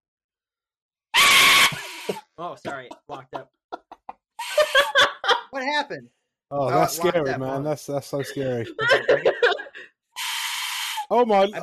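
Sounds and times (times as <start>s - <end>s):
shrill whistle call mimicking a screaming fox: 1.2s - 2.2s
laughter: 1.7s - 5.6s, 6.6s - 9.9s
speech: 2.4s - 3.6s, 5.6s - 9.5s, 11.1s - 11.6s.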